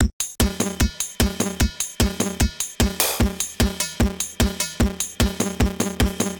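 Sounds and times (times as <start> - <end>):
drum machine beat: 0.0 - 6.3.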